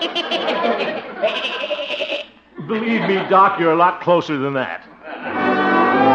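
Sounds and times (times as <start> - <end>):
goat bleating: 0.0 - 2.4
laughter: 0.0 - 6.0
speech: 2.7 - 5.4.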